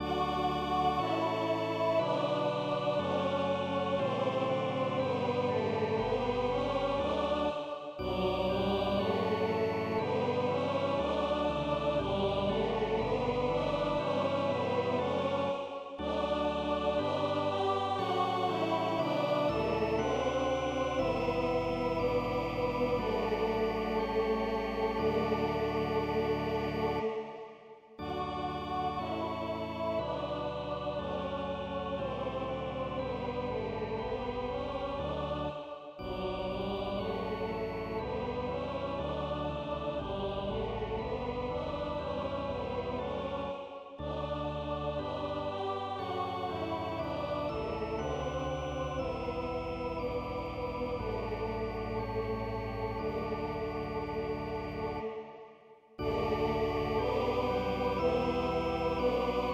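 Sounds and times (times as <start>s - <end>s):
choir singing a chorale in D major in German and French: 0.0s - 59.5s
organ accompanying a chorale in D major: 18.0s - 27.0s, 46.0s - 55.0s, 56.0s - 59.5s.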